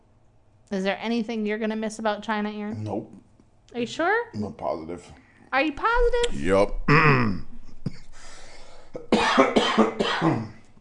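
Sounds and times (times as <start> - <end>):
speech: 0.7 - 7.4, 9.8 - 10.5
person coughing from sage caught in the throat: 6.9 - 8.1, 9.0 - 10.6.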